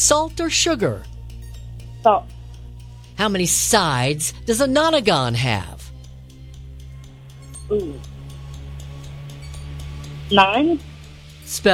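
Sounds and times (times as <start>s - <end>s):
constant low hum: 0.0s - 11.7s
countdown clock ticking: 0.0s - 11.7s
speech: 0.1s - 1.1s, 2.0s - 2.4s, 3.2s - 5.8s, 7.7s - 8.1s, 10.3s - 10.9s, 11.5s - 11.7s.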